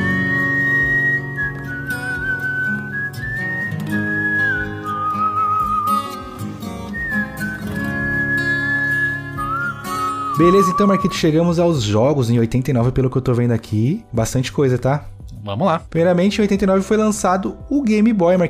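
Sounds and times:
loud whistled melody: 0:00.0 - 0:12.0
full instrumental backing music: 0:00.0 - 0:18.4
speech: 0:10.4 - 0:18.4.

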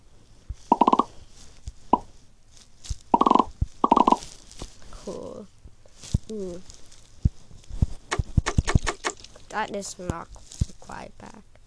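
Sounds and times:
faint low noise: 0:00.0 - 0:11.6
bubbles popping in a video game: 0:00.7 - 0:01.1, 0:03.2 - 0:04.2
speech: 0:06.3 - 0:06.8, 0:09.6 - 0:11.5.

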